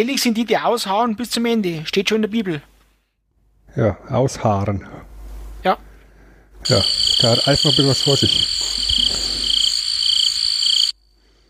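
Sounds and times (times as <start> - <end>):
speech: 0.0 - 2.7, 3.7 - 5.9, 6.6 - 9.5
loud chirping: 6.7 - 11.0.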